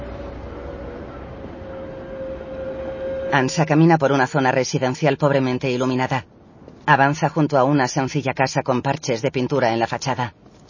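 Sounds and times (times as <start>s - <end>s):
sustained metallic whine: 0.0s - 4.5s
trams rolling along a street: 0.0s - 6.8s
speech: 3.3s - 6.3s, 6.9s - 10.5s.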